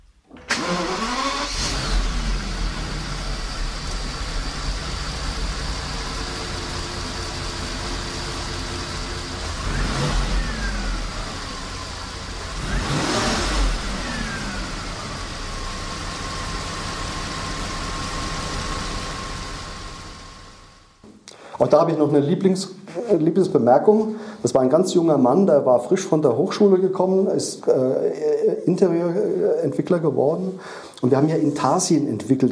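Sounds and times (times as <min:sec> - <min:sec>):
Volkswagen Phaeton W12 engine starting and idling in a garage, bonnet open: 0:00.0 - 0:21.0
speech: 0:21.6 - 0:32.5.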